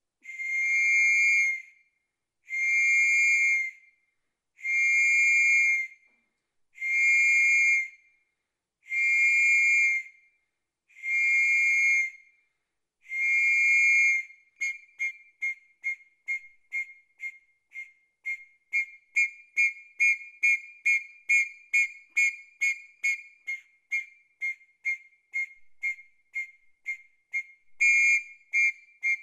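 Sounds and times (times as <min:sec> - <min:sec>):
whistle: 0:00.2 - 0:06.2, 0:06.8 - 0:08.2, 0:08.8 - 0:12.4, 0:13.0 - 0:29.2.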